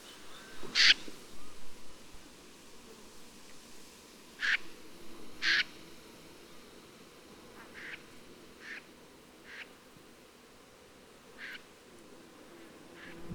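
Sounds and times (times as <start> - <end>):
common snipe Gallinago flight call: 0.7 - 1.0, 4.4 - 4.6, 7.7 - 8.0.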